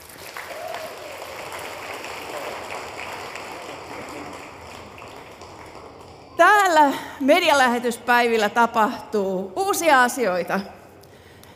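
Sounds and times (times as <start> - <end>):
audience applause for a house band at a Christian media mission event: 0.0 - 6.8
speech: 6.4 - 10.8.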